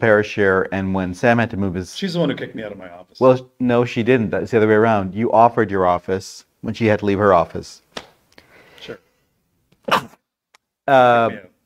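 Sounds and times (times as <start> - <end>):
speech: 0.0 - 7.8, 8.8 - 9.0, 9.9 - 10.2, 10.9 - 11.5
sneeze: 9.8 - 10.2.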